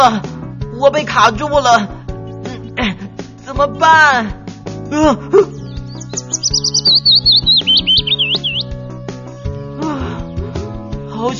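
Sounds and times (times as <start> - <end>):
speech: 0.0 - 2.0, 2.8 - 10.3, 11.2 - 11.3
music: 0.0 - 11.3
sparrow chirping: 5.5 - 9.0.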